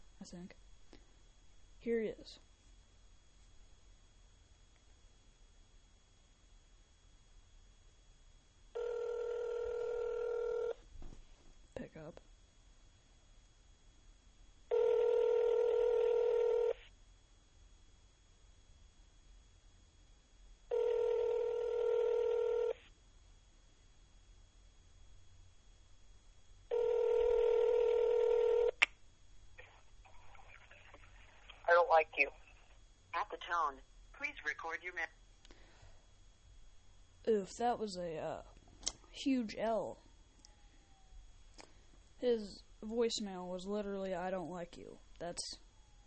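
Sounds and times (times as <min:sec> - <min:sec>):
speech: 0:00.2 - 0:00.7, 0:01.8 - 0:02.5, 0:32.0 - 0:32.4, 0:33.3 - 0:35.2, 0:37.2 - 0:38.5, 0:39.2 - 0:40.0, 0:42.2 - 0:45.6
phone ringback tones through a phone line: 0:08.8 - 0:10.8, 0:14.7 - 0:16.8, 0:20.7 - 0:22.8, 0:26.7 - 0:28.8.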